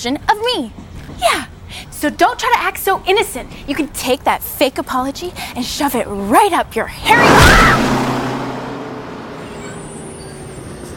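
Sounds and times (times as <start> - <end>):
speech: 0.0 - 8.0
bus engine rumbling in a movie scene: 7.0 - 10.9.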